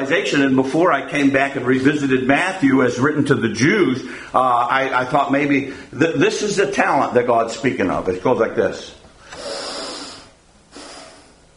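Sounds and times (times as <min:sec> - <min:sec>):
speech: 0:00.0 - 0:09.0
sharp inhale of breath: 0:09.2 - 0:11.5.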